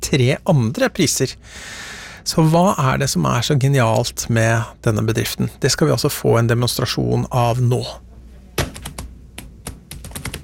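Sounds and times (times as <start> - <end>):
speech: 0.1 - 8.0
typing on a computer keyboard at a university in Porsgrunn Norway: 8.6 - 10.4.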